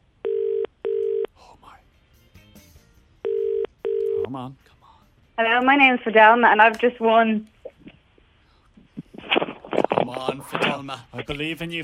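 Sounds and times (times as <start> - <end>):
telephone double-burst ringing tone as a call is placed: 0.2 - 1.3, 3.2 - 4.3
speech: 4.4 - 4.8, 5.4 - 7.5, 10.4 - 11.8.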